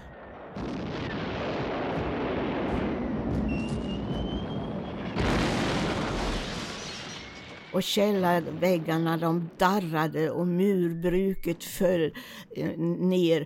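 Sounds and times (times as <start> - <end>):
thin whistle of falling bombs: 0.0 - 7.8
loud explosion: 0.0 - 9.0
heavy continuous rumble of bombardment: 0.0 - 9.6
speech: 7.8 - 13.4.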